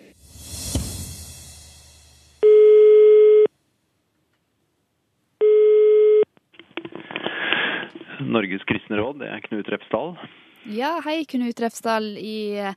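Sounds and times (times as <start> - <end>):
telephone ringing tone as a call connects: 2.4 - 3.5, 5.4 - 6.3
speech: 8.2 - 12.7.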